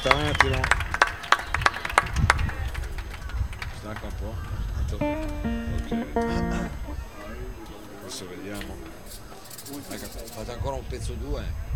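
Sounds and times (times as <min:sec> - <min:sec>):
speech: 0:00.0 - 0:00.8, 0:03.8 - 0:11.7
audience clapping: 0:00.0 - 0:04.4.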